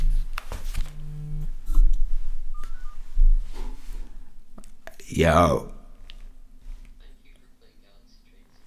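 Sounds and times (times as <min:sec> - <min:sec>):
mobile phone vibrating with incoming call: 0:00.0 - 0:03.1
speech: 0:05.1 - 0:05.8.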